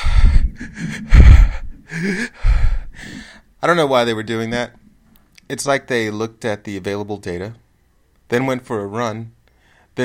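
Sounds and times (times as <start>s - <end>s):
human voice imitating frantic heavy breathing: 0.0s - 3.4s
speech: 2.0s - 2.4s, 3.6s - 4.8s, 5.5s - 7.6s, 8.3s - 9.4s.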